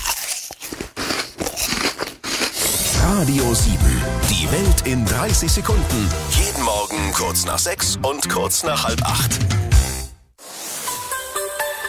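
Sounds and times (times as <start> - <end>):
person biting into and chewing an apple: 0.0 - 3.0
speech: 3.1 - 9.7.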